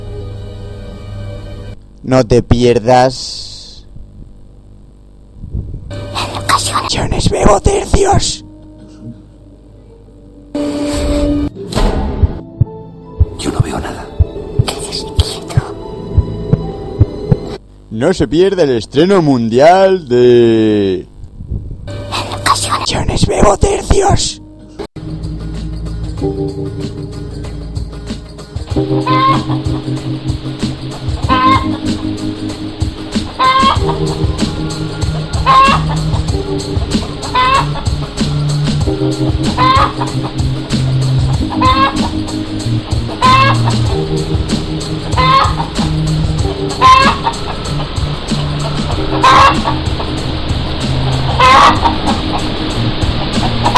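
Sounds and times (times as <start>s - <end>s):
loud continuous musical backing: 0.0s - 2.0s, 5.9s - 17.6s, 21.9s - 53.7s
speech: 2.0s - 3.5s, 7.2s - 8.4s, 18.0s - 21.1s, 22.9s - 24.4s, 31.5s - 32.9s, 33.5s - 36.9s, 39.0s - 40.9s, 41.6s - 45.9s
hen clucking: 28.8s - 29.9s, 30.9s - 32.1s, 33.2s - 38.1s, 39.4s - 42.4s, 43.1s - 43.9s, 45.1s - 53.7s.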